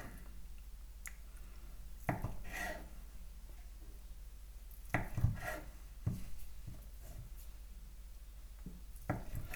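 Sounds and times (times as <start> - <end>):
low steady hum: 0.0 - 9.5
knife cutting food into cubes on a board: 2.1 - 2.9, 4.9 - 7.4, 9.1 - 9.5.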